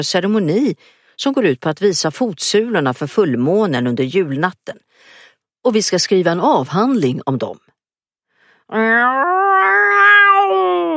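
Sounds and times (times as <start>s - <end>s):
speech: 0.0s - 7.7s, 8.7s - 9.5s
cat meowing threateningly: 8.7s - 10.9s.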